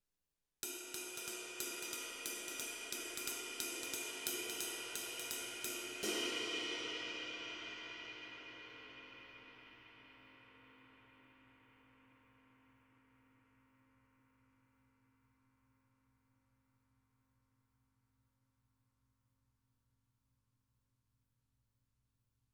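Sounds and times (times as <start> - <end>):
22-inch jazz ride cymbal: 0.6 - 10.9.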